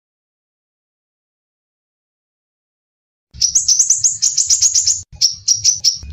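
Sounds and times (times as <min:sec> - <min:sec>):
crimson sunbird giving a fast high-pitched twittering trill and piercing notes: 0:03.4 - 0:06.1.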